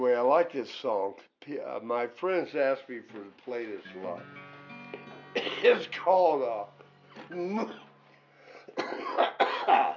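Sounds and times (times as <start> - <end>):
speech: 0.0 - 4.5, 5.3 - 7.9
smoker's harsh chesty coughing: 5.4 - 5.9, 8.6 - 9.9.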